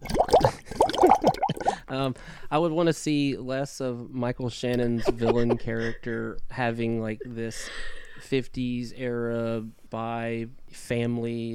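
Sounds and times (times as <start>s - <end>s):
bubbly water splashes as an entrance sound effect: 0.0s - 1.8s
speech: 2.0s - 11.5s.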